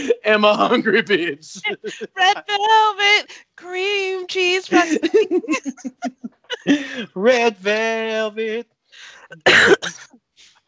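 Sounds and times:
laughter: 0.0s - 2.4s, 4.7s - 7.4s
speech: 0.0s - 10.2s
sharp loud cough from a person getting over a cold: 9.4s - 10.1s.

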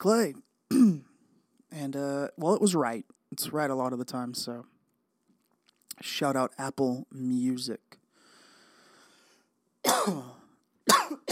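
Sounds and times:
speech: 0.0s - 1.1s, 1.7s - 4.8s, 6.0s - 8.0s, 10.0s - 10.4s
person clearing throat: 0.7s - 1.1s, 9.8s - 11.2s
person coughing: 0.7s - 1.1s, 9.8s - 11.2s.

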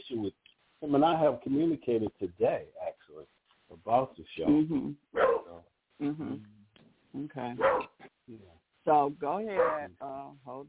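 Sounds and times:
speech: 0.9s - 2.8s, 3.9s - 5.0s, 6.0s - 6.6s, 7.2s - 10.6s
puppy barking in high yips: 5.2s - 5.6s, 7.6s - 8.0s, 9.6s - 9.9s.

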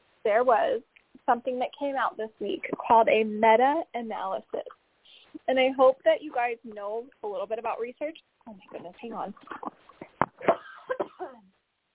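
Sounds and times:
speech: 0.2s - 4.8s, 5.4s - 9.7s
harsh hacking coughs: 10.2s - 11.4s.

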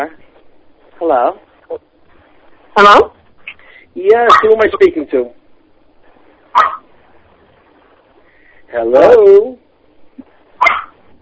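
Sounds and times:
speech: 0.0s - 0.2s, 1.0s - 1.9s, 2.8s - 3.2s, 4.0s - 5.4s, 8.7s - 9.6s
dog barking in the background of a phone call: 4.2s - 4.6s, 6.5s - 6.9s, 10.6s - 11.0s.

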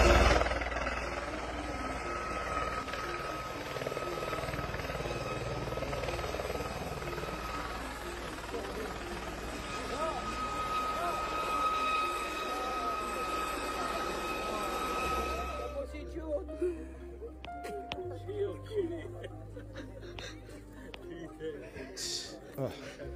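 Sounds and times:
helicopter rotor and engine roaring: 0.0s - 16.1s
laughter: 16.6s - 23.1s.

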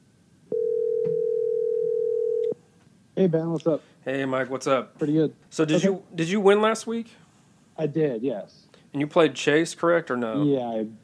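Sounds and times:
telephone dial tone while calling a caller: 0.5s - 2.6s
speech: 3.2s - 7.2s, 7.8s - 11.0s.

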